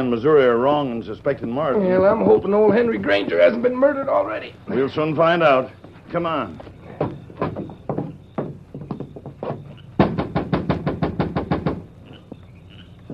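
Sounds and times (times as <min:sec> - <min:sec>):
speech: 0:00.0 - 0:06.8
loud knocking on a door: 0:06.9 - 0:11.9.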